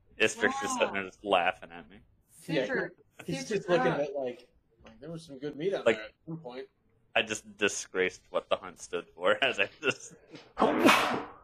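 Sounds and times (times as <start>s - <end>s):
speech: 0.2s - 11.4s
sneeze: 10.6s - 11.4s.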